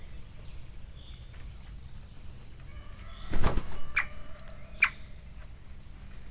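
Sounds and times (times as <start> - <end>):
magpie flying about in a zoo: 2.9 - 5.0.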